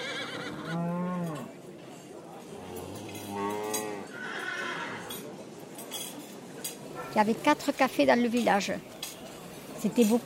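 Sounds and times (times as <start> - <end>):
horse whinnying at a village livestock fair: 0.0 - 0.8, 4.1 - 5.1
murmur of a village livestock fair: 0.0 - 10.2
speech: 7.1 - 8.9, 9.8 - 10.2.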